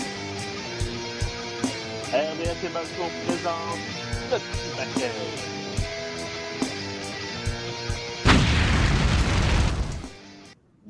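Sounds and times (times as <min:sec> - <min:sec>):
rhythmic music: 0:00.0 - 0:08.3
speech: 0:02.1 - 0:05.6
stage pyrotechnic fire effect roaring whoosh: 0:08.3 - 0:10.0.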